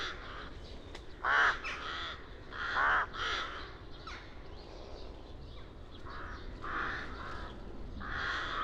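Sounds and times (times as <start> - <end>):
Rook Corvus frugilegus calling with harsh caws: 1.2 - 3.7, 6.1 - 8.6.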